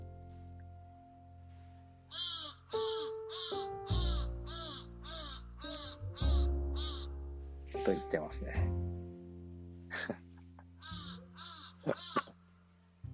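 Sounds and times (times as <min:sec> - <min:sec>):
crow cawing in nearby tree: 0:02.1 - 0:07.1, 0:10.8 - 0:12.3
speech: 0:07.9 - 0:08.8.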